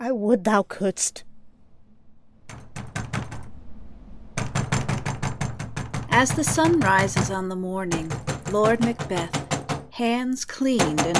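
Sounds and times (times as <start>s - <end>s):
speech: 0.1s - 1.3s, 6.2s - 9.4s, 10.0s - 11.1s
heavy knocking on a wooden castle door: 2.5s - 3.6s, 4.4s - 10.0s, 10.8s - 11.1s.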